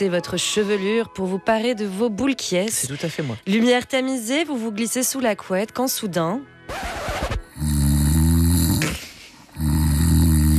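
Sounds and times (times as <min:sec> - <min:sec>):
speech: 0:00.0 - 0:07.7
person snoring in bed: 0:07.5 - 0:10.5.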